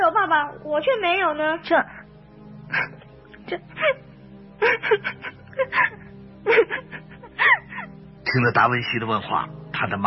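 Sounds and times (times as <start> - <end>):
speech: 0.3 - 2.0, 2.7 - 7.6, 8.3 - 10.0
woman sobbing in sorrow: 2.7 - 8.0.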